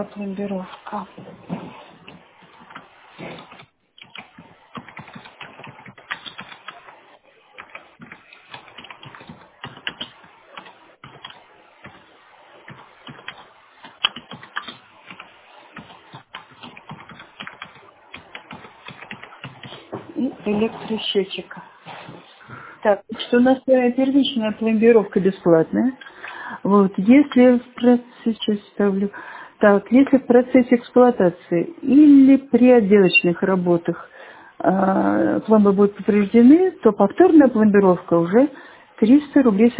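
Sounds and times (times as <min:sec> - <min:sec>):
speech: 0:00.0 - 0:01.8, 0:20.6 - 0:21.7, 0:22.8 - 0:26.1, 0:26.7 - 0:39.7
typing on a computer keyboard: 0:02.1 - 0:07.0, 0:07.6 - 0:12.0, 0:12.7 - 0:19.8.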